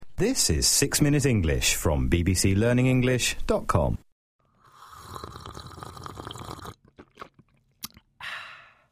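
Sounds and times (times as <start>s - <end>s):
speech: 0.2s - 4.0s
person slurping coffee from a cup: 4.6s - 8.1s
soft gulps: 4.7s - 8.2s.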